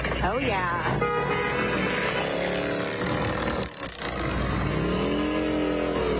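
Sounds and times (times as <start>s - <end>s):
speech: 0.2s - 1.4s
several motorcycle engines revving as riders roll down the street: 1.6s - 6.1s.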